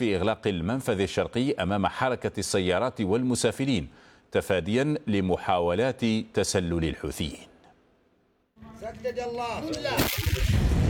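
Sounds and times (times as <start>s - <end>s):
speech: 0.0s - 7.5s, 8.6s - 10.8s
artillery cannon fire booming: 10.0s - 10.8s
heavy blast: 10.0s - 10.8s.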